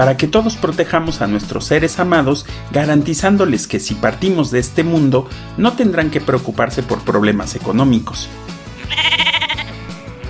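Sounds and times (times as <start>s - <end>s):
speech: 0.0s - 9.3s
sheep bleating: 8.8s - 10.2s.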